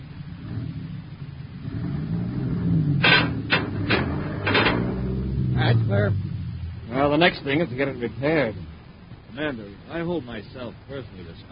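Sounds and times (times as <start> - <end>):
heavy truck engine revving as it pulls forward: 0.0 - 9.6
sharp noisy bursts of clatter: 2.6 - 6.8
speech: 7.2 - 8.7, 9.3 - 11.4.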